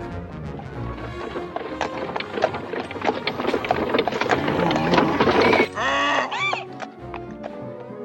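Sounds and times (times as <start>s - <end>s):
donkey hooves clip-clopping: 0.5s - 8.0s
donkey-drawn coach rolling with rumbling clatter: 0.8s - 5.8s
donkey braying: 1.0s - 7.2s.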